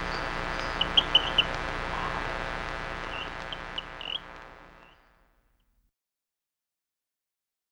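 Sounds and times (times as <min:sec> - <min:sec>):
Rio Grande chirping frog chirps, Syrrhophus: 0:00.0 - 0:05.1
Rio Grande chirping frog soft upswept squeaks: 0:00.0 - 0:05.1
constant background hum: 0:00.0 - 0:05.3.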